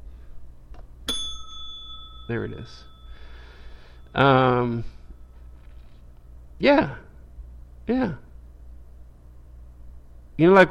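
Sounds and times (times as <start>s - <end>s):
small bell ding: 1.1s - 4.6s
speech: 2.3s - 2.9s, 4.1s - 5.0s, 6.6s - 7.0s, 7.9s - 8.2s, 10.4s - 10.6s.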